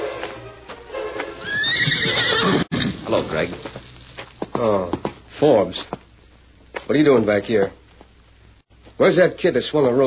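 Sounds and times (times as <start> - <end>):
hooves clopping on hard ground: 0.2 - 6.0
horse neighing: 1.4 - 3.4
speech: 6.9 - 7.8, 9.0 - 10.0.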